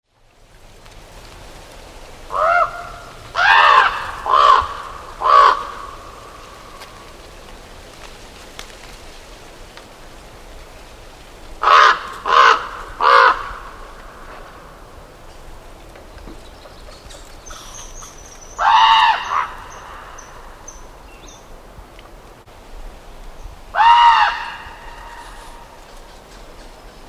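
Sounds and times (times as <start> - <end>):
raven calling: 2.2 - 7.1, 11.6 - 14.8, 17.0 - 20.9, 23.7 - 27.0.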